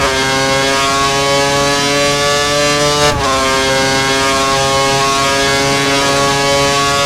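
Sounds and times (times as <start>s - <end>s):
F1 racing cars: 0.0s - 7.0s.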